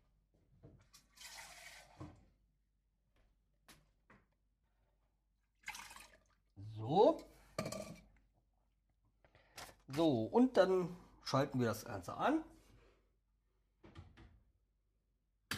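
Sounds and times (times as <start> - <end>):
water pouring into a pot holding lemon slices: 1.0 - 2.1, 5.6 - 6.5
kitchenware clinking: 7.6 - 8.0
speech: 10.0 - 12.5.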